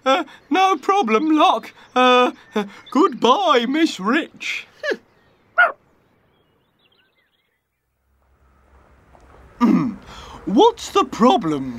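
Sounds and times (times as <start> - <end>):
speech: 0.2 - 5.0, 10.4 - 11.7
dog barking with short sharp yaps: 5.6 - 5.8.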